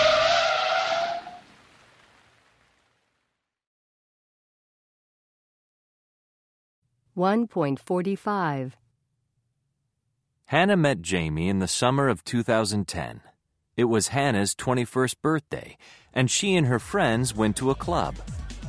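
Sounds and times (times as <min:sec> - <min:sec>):
car tires screeching as a car brakes hard at speed: 0:00.0 - 0:01.5
speech: 0:07.2 - 0:08.8, 0:10.5 - 0:18.6.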